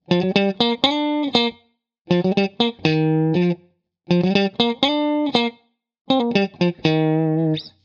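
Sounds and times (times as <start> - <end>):
dry funk guitar loop: 0.1 - 7.8.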